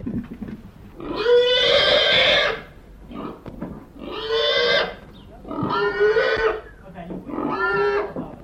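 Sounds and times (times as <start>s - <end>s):
faint noise: 0.0s - 8.4s
pig squealing during slaughter: 1.0s - 3.4s, 4.0s - 6.7s, 7.3s - 8.2s.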